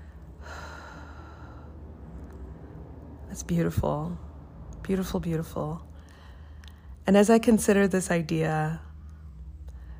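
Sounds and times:
long steady exhale: 0.2 - 1.9
speech: 3.3 - 5.9, 7.1 - 8.9.

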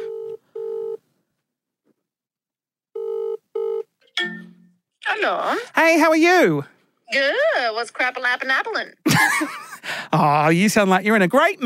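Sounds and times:
telephone ringing during a call: 0.0 - 1.0, 3.0 - 4.7
speech: 5.2 - 11.6.

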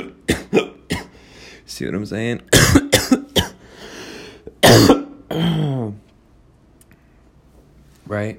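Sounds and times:
hacking coughs while smoking: 0.0 - 1.2, 2.5 - 3.7, 4.4 - 5.9
speech: 1.8 - 2.9, 8.1 - 8.3.

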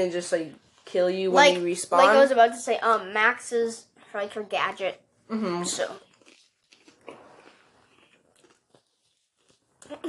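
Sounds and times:
speech: 0.0 - 6.0, 9.9 - 10.0
people chewing and crunching food: 5.2 - 10.0.

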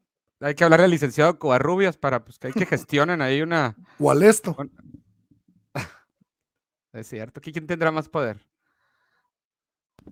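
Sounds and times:
speech: 0.4 - 5.0, 5.8 - 6.0, 6.9 - 8.5
laughter: 2.5 - 2.9
soft drawn-in breath: 8.6 - 9.4.

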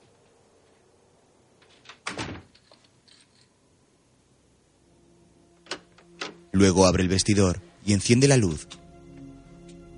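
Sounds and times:
door closing thud behind a man arriving home: 1.9 - 2.5
speech: 6.6 - 8.8.

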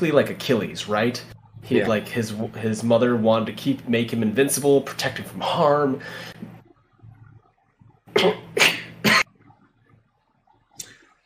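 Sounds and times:
speech: 0.0 - 6.4, 8.2 - 8.7
harsh forceful coughs: 8.2 - 9.3.

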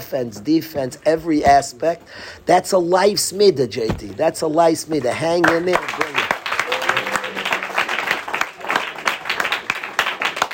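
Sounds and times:
speech: 0.1 - 6.0
clapping: 5.1 - 10.5
large crowd cheering: 5.7 - 10.5.

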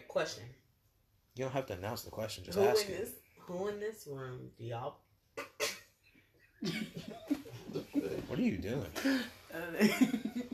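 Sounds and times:
speech: 0.1 - 0.6, 1.4 - 5.5, 6.6 - 10.5
person coughing: 5.4 - 5.9, 9.0 - 9.3
laughter: 6.6 - 10.5.

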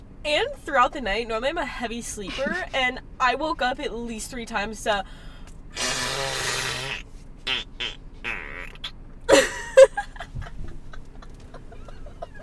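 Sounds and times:
speech: 0.2 - 6.4
laughter: 2.3 - 2.7, 9.3 - 12.4
person blowing a wet buzzing raspberry imitating a fart: 5.8 - 9.5.

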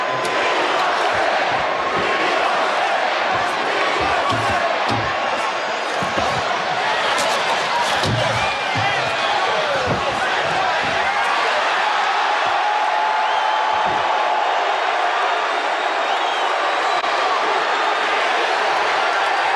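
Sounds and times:
thuds: 0.0 - 11.5, 13.7 - 14.3
large arena crowd chanting at a wrestling event: 0.0 - 19.5.

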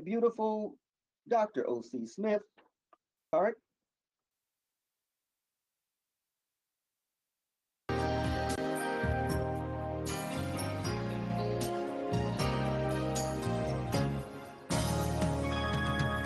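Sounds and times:
speech: 0.0 - 2.6, 3.3 - 3.6
recorded instrumental song intro with sustained chords and steady beat: 7.9 - 16.2.

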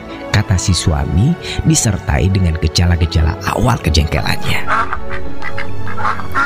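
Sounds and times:
speech: 0.4 - 6.4
duck quacking: 4.6 - 6.4.

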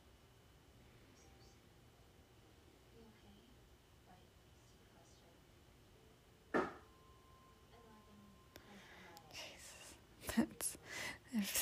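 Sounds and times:
quiet hum: 0.0 - 11.5
sharp pop from a refrigerator: 6.5 - 6.8.

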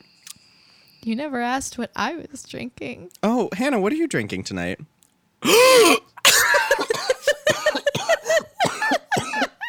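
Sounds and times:
speech: 1.1 - 6.0
throat clearing: 5.5 - 8.2
person in a loud coughing fit: 5.5 - 9.6.

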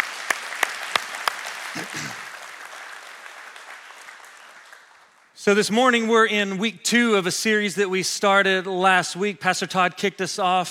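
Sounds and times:
church audience clapping: 0.0 - 5.4
speech: 1.8 - 2.2, 5.4 - 10.7.

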